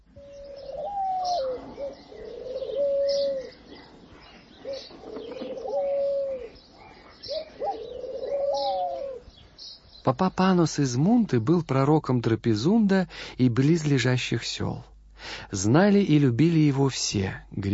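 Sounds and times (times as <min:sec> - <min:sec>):
wild pigeons cooing: 0:00.0 - 0:09.6
faint bird chirps: 0:00.0 - 0:10.2
speech: 0:10.1 - 0:17.7.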